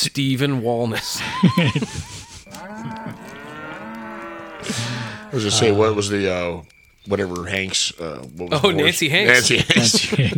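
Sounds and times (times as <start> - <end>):
speech: 0.0 - 3.2, 4.6 - 10.3
laughter: 1.0 - 3.5, 4.6 - 6.1, 8.5 - 10.3
cow mooing: 2.3 - 6.2.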